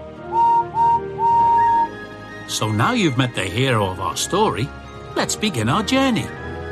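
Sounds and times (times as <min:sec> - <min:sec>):
steam engine whistle blasts: 0:00.2 - 0:02.0
speech: 0:02.5 - 0:06.4.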